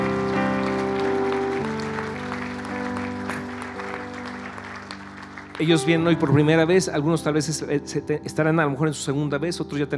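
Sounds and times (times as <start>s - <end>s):
large church audience clapping steadily: 0.0s - 6.5s
sustained keyboard or organ chords: 0.0s - 9.9s
speech: 5.6s - 9.9s.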